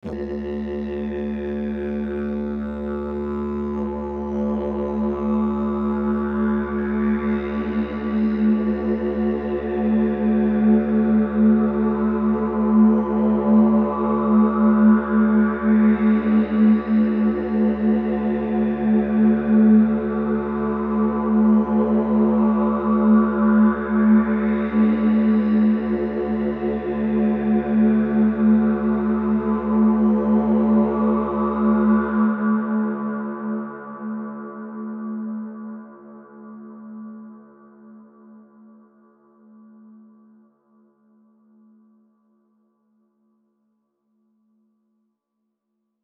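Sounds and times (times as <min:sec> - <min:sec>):
reverb drone: 0:00.0 - 0:32.4.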